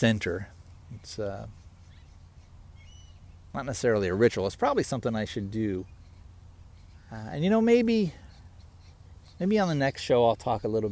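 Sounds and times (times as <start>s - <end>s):
speech: 0.0s - 1.6s, 3.6s - 6.0s, 7.1s - 8.2s, 9.4s - 10.8s
steady low rumble of outdoor noise: 0.0s - 10.8s
faint thin bird chirps in a park: 0.6s - 3.6s, 5.2s - 10.8s.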